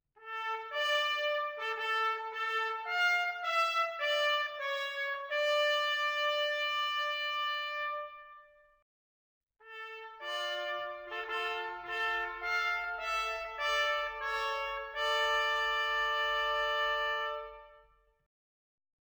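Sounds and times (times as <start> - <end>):
trumpet bell: 0.2 - 8.2, 9.7 - 17.7.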